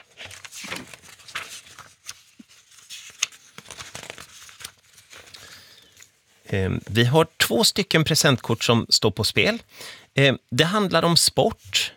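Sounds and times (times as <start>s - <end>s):
pages of a paper quiz-question binder being flipped through: 0.0s - 6.2s
sharper crinkles of paper pages: 0.0s - 6.2s
speech: 6.5s - 11.8s.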